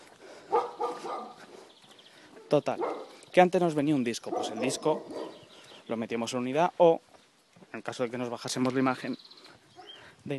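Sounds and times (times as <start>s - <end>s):
hiss: 0.0s - 10.3s
dog barking behind a fence: 0.5s - 1.7s, 2.4s - 3.2s, 4.3s - 5.4s
speech: 2.5s - 5.3s, 5.9s - 7.1s, 7.7s - 9.4s.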